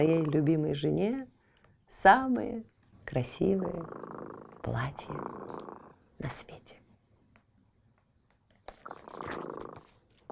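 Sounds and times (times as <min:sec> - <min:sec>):
speech: 0:00.0 - 0:06.8
cat purring softly: 0:03.3 - 0:06.2, 0:08.8 - 0:10.3.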